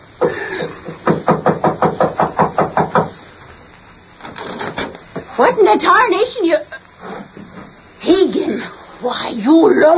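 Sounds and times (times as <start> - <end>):
firm knocks on a wooden door: 1.2 - 3.1
speech: 5.4 - 6.8, 8.0 - 9.9.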